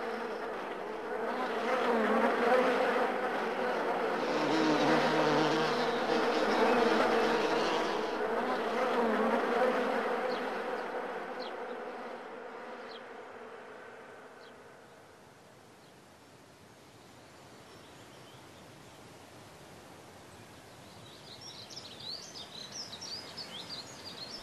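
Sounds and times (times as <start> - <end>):
many bees buzzing around a hive: 0.0 - 12.4.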